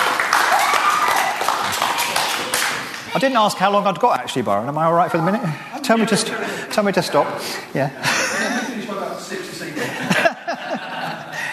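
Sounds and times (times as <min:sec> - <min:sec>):
audience applause: 0:00.0 - 0:03.3
speech: 0:03.1 - 0:08.2
laughter: 0:08.0 - 0:11.5.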